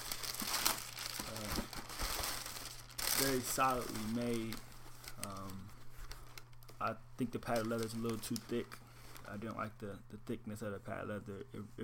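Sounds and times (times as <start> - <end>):
wrapping paper crinkling as it is pulled off a shoe: 0.0 - 9.6
speech: 3.2 - 5.8, 6.8 - 11.8.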